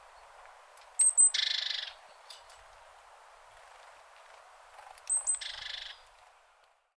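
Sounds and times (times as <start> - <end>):
great tit Parus major giving piercing notes and buzzy churr: 0.0 - 2.6, 4.8 - 6.1.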